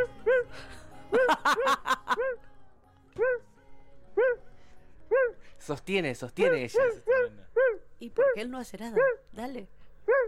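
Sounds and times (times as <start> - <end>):
laughter: 0.4 - 2.4
dogs barking: 5.1 - 5.4, 6.5 - 7.9, 9.0 - 9.2, 10.0 - 10.2
speech: 5.7 - 7.4, 8.0 - 10.2.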